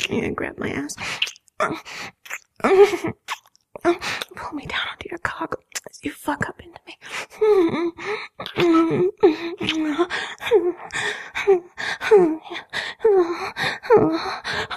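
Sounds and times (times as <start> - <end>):
speech: 0.1 - 14.7
person gasping: 8.0 - 14.7.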